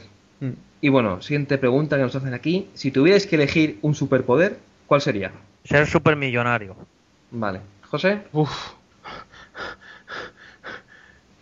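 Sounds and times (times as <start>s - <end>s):
speech: 0.4s - 9.8s
heavy panting breath: 8.5s - 11.4s.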